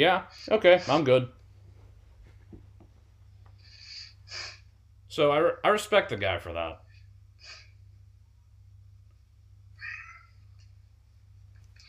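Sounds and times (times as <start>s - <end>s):
speech: 0.0s - 1.4s, 5.2s - 6.8s
steady low hum: 1.3s - 11.8s
cat meowing: 9.8s - 10.4s.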